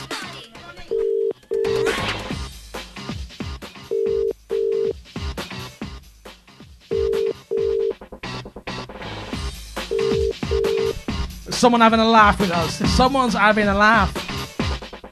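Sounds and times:
telephone double-ring ringing tone calling a contestant: 0:00.9 - 0:01.9, 0:03.9 - 0:05.0, 0:06.9 - 0:08.0, 0:09.9 - 0:11.0
speech: 0:11.6 - 0:14.2.

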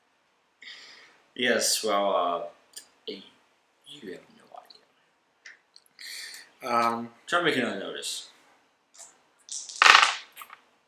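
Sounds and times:
speech: 0:01.4 - 0:03.3, 0:03.9 - 0:04.3, 0:06.6 - 0:08.3
dice clattering and rolling on a hard tabletop: 0:09.5 - 0:10.6.

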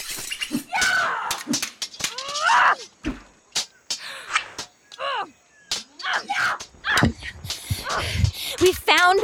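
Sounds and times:
banshee shrieking during a fight: 0:00.4 - 0:03.0, 0:05.0 - 0:08.2.

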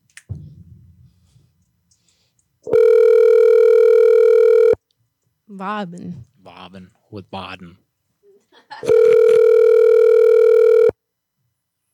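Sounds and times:
long loud telephone ringback tone while calling: 0:02.7 - 0:04.8, 0:08.8 - 0:10.9
speech: 0:05.6 - 0:07.8.

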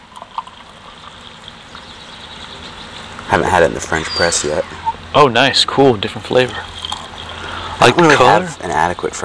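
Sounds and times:
liquid pouring into a cup: 0:00.0 - 0:03.3
speech: 0:03.3 - 0:06.8, 0:07.8 - 0:09.2.

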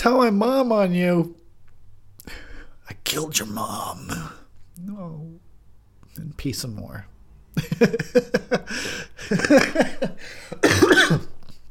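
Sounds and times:
speech: 0:00.0 - 0:01.4, 0:02.3 - 0:05.4, 0:06.2 - 0:11.3
breathy laughter: 0:07.6 - 0:10.6
harsh hacking coughs: 0:09.3 - 0:11.4.

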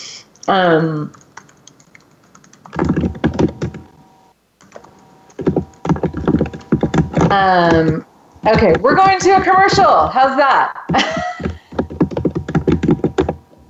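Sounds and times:
speech: 0:00.4 - 0:01.2, 0:07.3 - 0:11.2
rapid keystrokes on a computer keyboard: 0:01.1 - 0:03.9, 0:04.6 - 0:09.9, 0:10.9 - 0:13.4.

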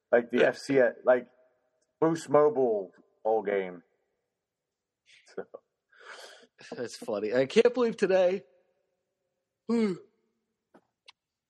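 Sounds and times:
speech: 0:00.1 - 0:01.4, 0:02.0 - 0:03.9, 0:05.3 - 0:08.5, 0:09.7 - 0:10.1
single voiced yawn trailing into a breathy exhale: 0:09.7 - 0:10.2.

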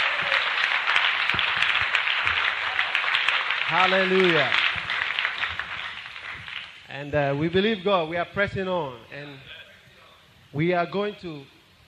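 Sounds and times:
crowd applauding: 0:00.0 - 0:07.1
speech: 0:03.7 - 0:04.7, 0:06.9 - 0:09.5, 0:10.5 - 0:11.6.

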